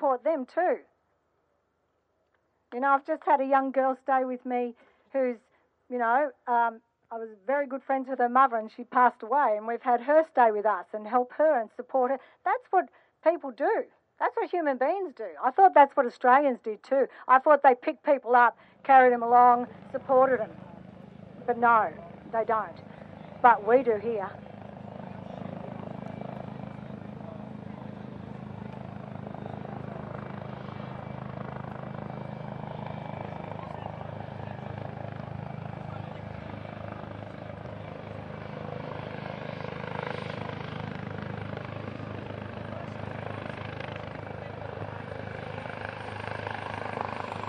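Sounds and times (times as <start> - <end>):
speech: 0.1 - 0.9, 2.7 - 20.7, 21.5 - 24.5
helicopter passing overhead with rotor thumping: 19.4 - 47.4
faint indistinct voices: 24.7 - 30.5, 32.7 - 38.4, 41.6 - 46.3.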